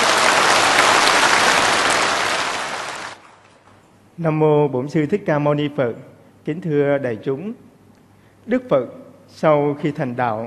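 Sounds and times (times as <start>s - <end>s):
crowd of Buddhist laypeople applauding in a temple lecture hall: 0.0s - 3.3s
speech: 4.2s - 7.7s, 8.4s - 10.4s.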